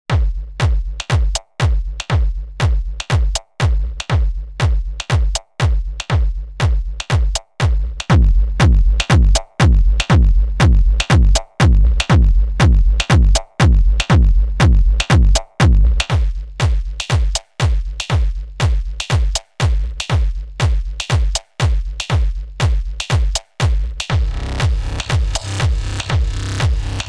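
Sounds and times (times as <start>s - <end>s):
distorted drum loop: 0.1s - 27.0s.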